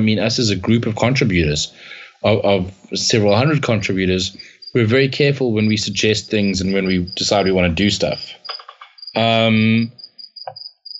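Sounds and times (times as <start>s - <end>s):
speech: 0.0s - 8.5s, 9.2s - 10.0s
cricket chirping: 3.1s - 10.9s
short loud burst of human voice: 9.2s - 9.9s.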